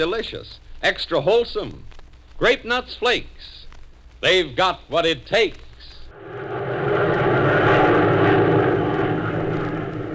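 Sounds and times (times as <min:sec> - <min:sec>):
speech: 0:00.0 - 0:03.6, 0:04.2 - 0:05.6
P-61 propeller engines droning in flight: 0:06.1 - 0:10.1.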